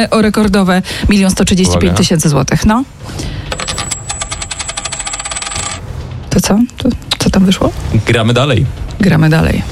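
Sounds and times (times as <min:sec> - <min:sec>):
speech: 0:00.0 - 0:03.9, 0:06.4 - 0:09.7
coin tossed during a game-show round landing and rattling: 0:03.5 - 0:05.9.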